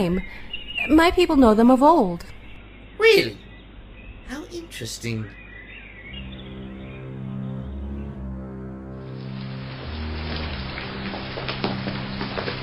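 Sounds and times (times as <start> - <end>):
speech: 0.0 - 2.4, 3.0 - 3.4, 4.3 - 5.4
low droning musical tone: 5.5 - 12.6
steady rain falling: 8.6 - 12.6.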